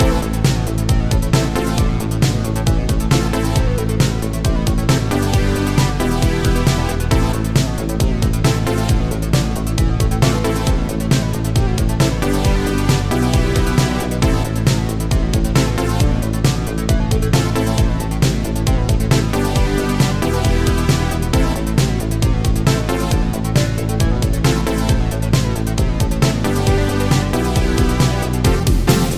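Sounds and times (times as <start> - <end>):
synthwave character select music: 0.0 - 29.1.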